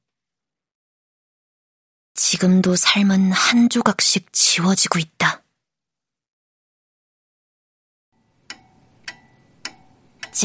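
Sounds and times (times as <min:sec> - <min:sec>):
speech: 0:02.2 - 0:05.4
pendulum wall clock ticking: 0:08.2 - 0:10.4.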